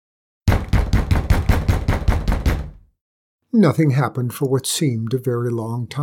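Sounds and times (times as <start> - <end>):
fists pounding on a heavy front door of a big house in the snow: 0.5 - 2.9
speech: 3.5 - 6.0.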